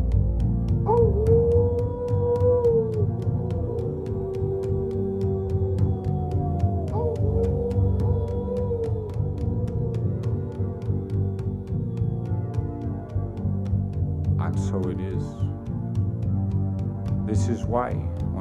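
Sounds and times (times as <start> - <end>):
low steady rumbling background: 0.0 - 18.3
coyote howling: 0.8 - 12.4.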